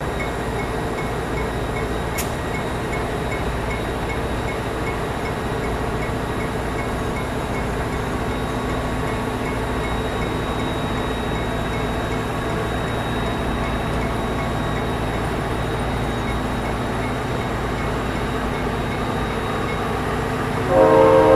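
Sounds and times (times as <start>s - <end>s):
train idling: 0.0s - 21.3s
train horn: 20.7s - 21.3s.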